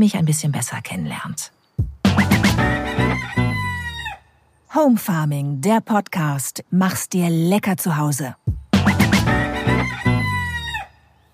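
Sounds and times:
speech: 0.0s - 2.8s, 4.7s - 8.5s
rooster on a small home farm crowing: 2.6s - 4.3s, 9.3s - 11.1s.

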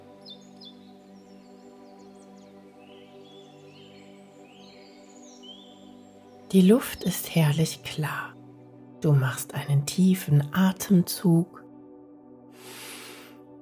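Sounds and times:
several birds chirping and trilling: 0.0s - 8.2s
speech: 6.5s - 8.4s, 9.0s - 11.6s.

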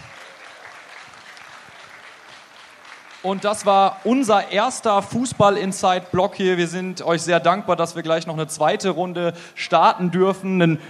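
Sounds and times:
audience applause: 0.0s - 5.0s
speech: 3.2s - 10.8s.

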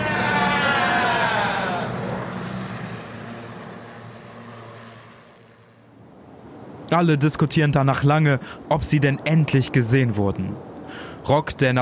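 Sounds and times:
jet plane approaching and flying overhead: 0.0s - 6.9s
speech: 6.9s - 11.7s.

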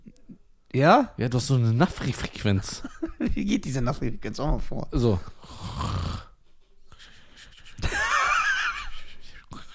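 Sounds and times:
speech: 0.7s - 6.2s
voice imitating snoring with raspy bursts: 5.4s - 6.4s
laughter: 7.2s - 9.4s.

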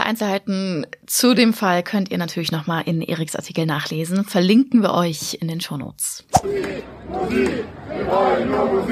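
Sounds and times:
speech: 0.1s - 8.9s
large crowd of young people chanting in unison: 6.4s - 8.9s.

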